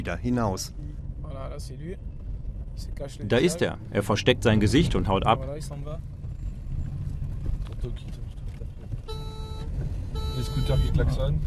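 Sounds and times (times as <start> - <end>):
speech: 0.0 - 2.1, 2.8 - 6.2, 7.8 - 8.4, 10.4 - 11.4
steady rumble of street traffic and engines: 0.0 - 11.4
short horn blasts from small motorbikes: 9.1 - 11.1.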